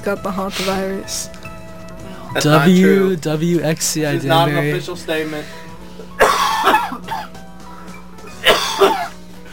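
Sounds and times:
speech: 0:00.0 - 0:01.4, 0:02.3 - 0:05.6, 0:08.8 - 0:09.1
faint steady hum: 0:00.0 - 0:09.5
smoker's rough cough: 0:06.2 - 0:07.4, 0:08.4 - 0:09.2.

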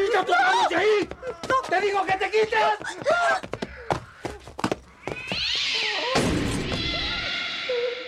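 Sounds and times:
speech: 0:00.2 - 0:03.4
cat yowling and meowing loudly: 0:05.0 - 0:07.8.

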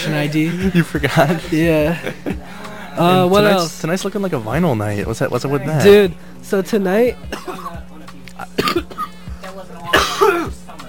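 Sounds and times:
speech: 0:00.0 - 0:02.4, 0:03.0 - 0:07.8
laughter: 0:00.0 - 0:03.0
person with a bad cough coughing: 0:07.3 - 0:07.8, 0:08.5 - 0:09.2, 0:09.9 - 0:10.6
throat clearing: 0:08.5 - 0:09.2, 0:09.9 - 0:10.6.

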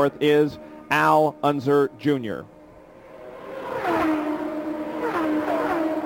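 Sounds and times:
speech: 0:00.0 - 0:02.6
race car engine accelerating through gear changes on back stretch: 0:02.7 - 0:06.0.

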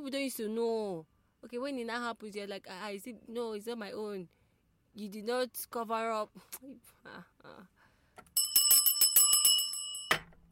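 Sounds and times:
speech: 0:00.0 - 0:04.4, 0:05.0 - 0:07.8
bell ringing in a fast rattling trill: 0:08.4 - 0:10.3.

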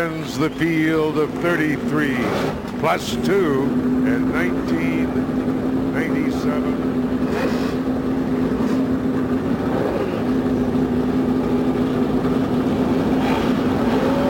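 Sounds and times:
speech: 0:00.0 - 0:07.8
many racing engines idling and revving: 0:00.0 - 0:14.2.

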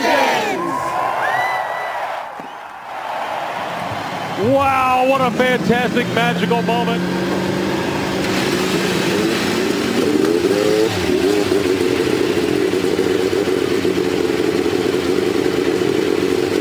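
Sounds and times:
crowd-like wash: 0:00.0 - 0:09.7
several Indy race car engines at Indianapolis starting and revving: 0:03.6 - 0:16.5
speech: 0:04.4 - 0:07.4, 0:10.5 - 0:12.2.

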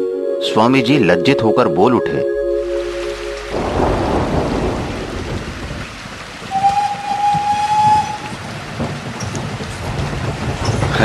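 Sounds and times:
speech: 0:00.4 - 0:02.4
thunder rumbling in a night storm at a railway station: 0:02.4 - 0:11.0
heavy rain in a night storm at a railway station: 0:02.6 - 0:11.0
wind in a night storm at a railway station: 0:02.6 - 0:11.0.

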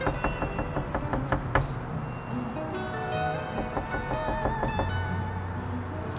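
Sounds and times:
soft quick taps on a door: 0:00.0 - 0:01.9, 0:03.6 - 0:05.1
steady musical background: 0:00.0 - 0:06.1.

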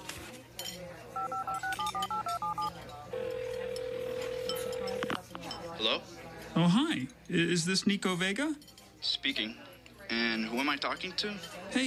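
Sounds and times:
touch-tone beeps of a phone number being dialed: 0:01.2 - 0:05.2
speech: 0:05.8 - 0:11.8.

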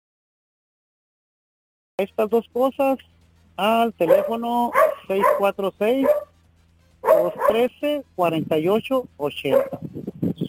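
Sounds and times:
speech: 0:02.0 - 0:06.2, 0:07.2 - 0:09.9
small dog barking in high-pitched yips: 0:04.0 - 0:06.3, 0:07.0 - 0:07.7, 0:09.5 - 0:09.8.

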